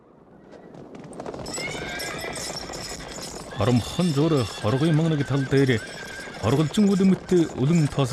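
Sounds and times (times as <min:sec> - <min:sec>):
more than twenty racing horses galloping on a river bank: 0:00.2 - 0:08.1
racing horse whinny: 0:01.4 - 0:07.6
speech: 0:03.6 - 0:08.1.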